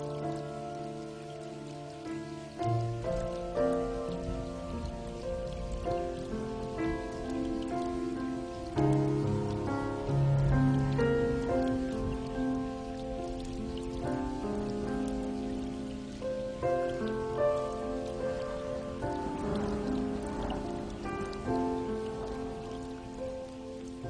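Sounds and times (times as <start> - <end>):
soft melodic music of sustained notes: 0.0 - 24.0
steady rain pattering on a surface: 0.0 - 24.0.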